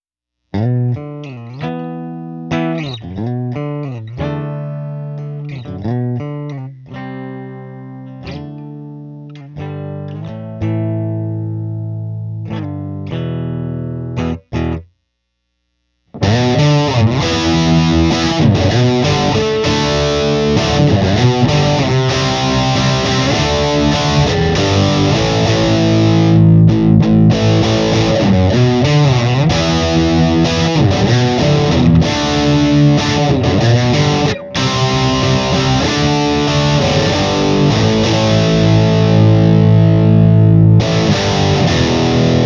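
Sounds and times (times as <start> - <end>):
electric guitar on bridge pickup through Marshall ShredMaster distortion: 0.4 - 42.4.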